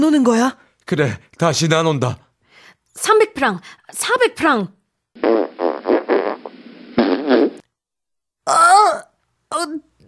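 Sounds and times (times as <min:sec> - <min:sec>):
speech: 0:00.0 - 0:02.2, 0:03.0 - 0:05.5, 0:09.6 - 0:10.0
fart: 0:05.2 - 0:07.6.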